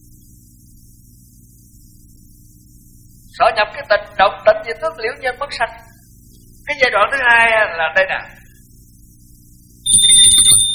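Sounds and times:
speech: 0:03.4 - 0:05.9, 0:06.7 - 0:08.4
hand bell shaken and rung during a Buddhist teaching: 0:09.9 - 0:10.7.

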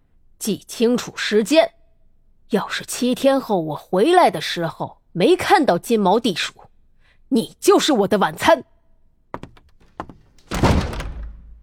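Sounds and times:
speech: 0:00.4 - 0:01.8, 0:02.5 - 0:06.7, 0:07.3 - 0:08.7
light knocks: 0:09.3 - 0:11.6
door slammed shut: 0:09.4 - 0:11.6.

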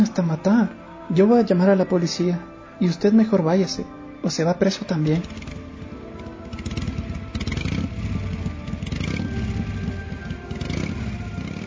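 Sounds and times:
speech: 0:00.1 - 0:05.5
motorcycle speeding away: 0:05.2 - 0:11.6.

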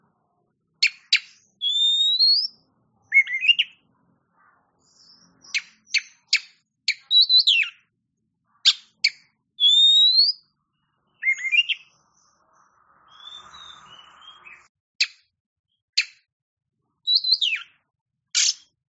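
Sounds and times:
Oriental magpie-robin giving spaced clicks and looping whistled notes: 0:00.8 - 0:03.8, 0:04.8 - 0:07.9, 0:08.6 - 0:10.5, 0:11.2 - 0:12.4, 0:13.0 - 0:16.3, 0:17.0 - 0:17.8, 0:18.4 - 0:18.8.

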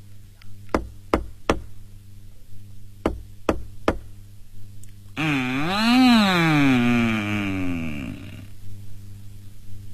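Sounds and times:
knocking on a household's door: 0:00.7 - 0:01.7, 0:03.0 - 0:04.0
wavering groan-like sound: 0:05.2 - 0:08.6.

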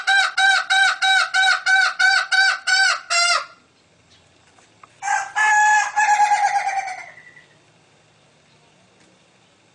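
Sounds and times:
female green junglefowl clucking: 0:00.0 - 0:03.6, 0:04.9 - 0:07.5.

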